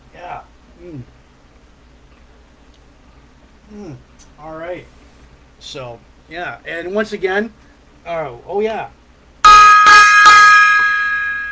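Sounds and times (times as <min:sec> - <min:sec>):
speech: 0:03.7 - 0:05.0, 0:05.6 - 0:09.0
gong being struck: 0:09.4 - 0:11.4.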